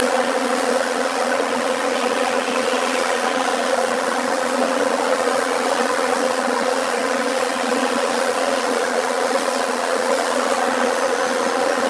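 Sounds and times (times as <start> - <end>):
bees humming: 0.0 - 11.8.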